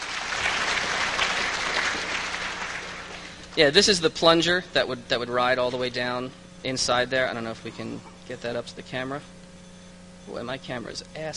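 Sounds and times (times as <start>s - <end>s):
audience applause: 0.0s - 3.4s
speech: 3.6s - 9.4s, 10.3s - 11.3s.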